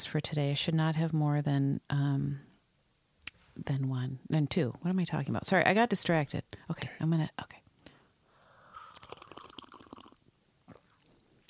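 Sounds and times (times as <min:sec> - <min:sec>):
speech: 0:00.0 - 0:02.5, 0:03.6 - 0:07.6
coffee slurping and gurgling into mic: 0:08.8 - 0:11.4
wet mouth sounds: 0:08.8 - 0:11.4.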